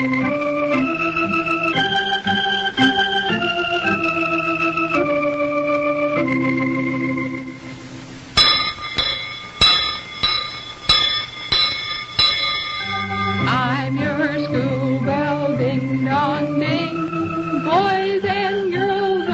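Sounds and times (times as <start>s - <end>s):
sung melody: 0.0s - 19.3s
bright bell ringing: 8.4s - 14.5s.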